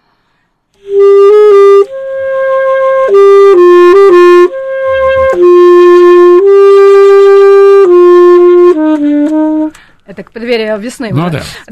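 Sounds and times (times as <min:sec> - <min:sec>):
solo saxophone playing a lyrical classical melody: 0:00.8 - 0:09.8
speech: 0:10.4 - 0:11.6.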